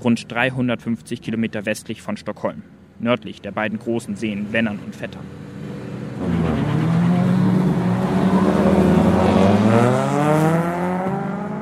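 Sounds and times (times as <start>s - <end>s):
speech: 0.0s - 5.5s
Opel racing car engine revving during a race in Munkfors Sweden: 5.5s - 11.6s.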